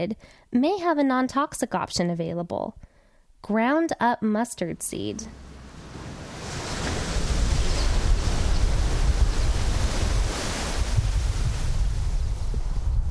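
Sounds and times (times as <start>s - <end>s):
speech: 0.0s - 5.4s
blustery wind across an open farm overlooking the sea: 4.9s - 13.0s.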